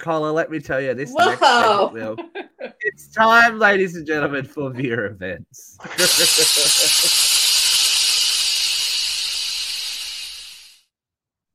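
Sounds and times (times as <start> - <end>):
speech: 0.0 - 2.4, 3.0 - 7.2
laughter: 1.2 - 2.9, 5.8 - 7.2
escaping steam hissing: 5.8 - 10.8.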